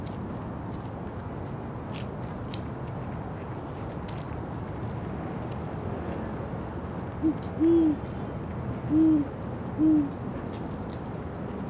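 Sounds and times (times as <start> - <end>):
faint background noise: 0.0 - 11.6
great horned owl hooting at dusk: 7.2 - 8.0, 8.9 - 10.1.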